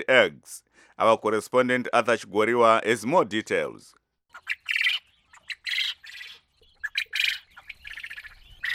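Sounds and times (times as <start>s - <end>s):
speech: 0.0s - 4.7s
several domesticated quail chirping and squawking: 4.3s - 8.7s.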